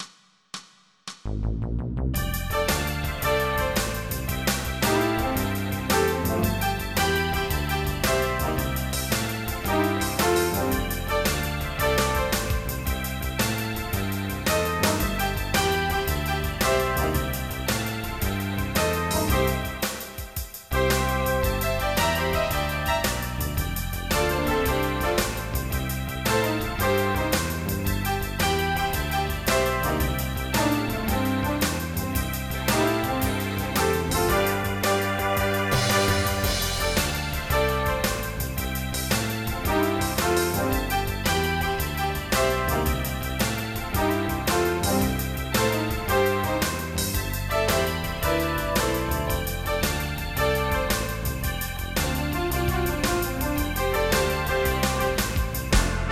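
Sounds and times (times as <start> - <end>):
synthesizer: 2.2 - 56.1.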